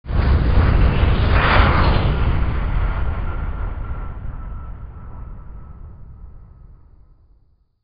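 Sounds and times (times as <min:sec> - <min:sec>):
spaceship: 0:00.1 - 0:07.4.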